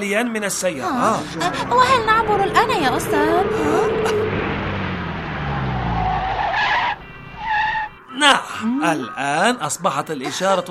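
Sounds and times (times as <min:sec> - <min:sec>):
speech: 0:00.0 - 0:04.6, 0:08.2 - 0:10.7
car engine rumble: 0:00.5 - 0:08.0
car tires squealing while braking hard at a street crossing: 0:00.9 - 0:08.1.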